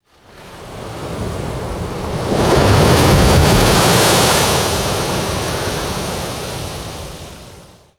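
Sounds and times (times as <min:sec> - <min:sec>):
heavy ocean wave crashing on rocks: 0:01.6 - 0:07.6.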